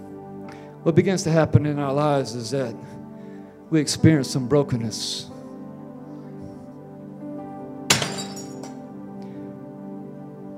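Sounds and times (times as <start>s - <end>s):
speech: 0.8s - 3.0s, 3.7s - 5.3s
glass smashing: 7.9s - 8.8s
tinkling glass shards: 7.9s - 8.8s.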